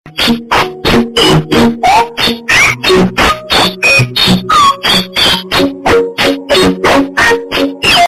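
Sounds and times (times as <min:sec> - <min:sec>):
low quality tutorial music: 0:00.1 - 0:08.0.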